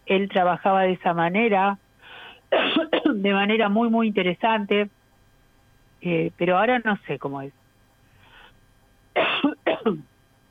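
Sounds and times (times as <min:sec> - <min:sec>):
speech: 0:00.1 - 0:01.8, 0:02.5 - 0:05.0, 0:06.0 - 0:07.6, 0:09.8 - 0:10.1
harsh throaty coughs: 0:02.5 - 0:03.2, 0:09.2 - 0:10.0.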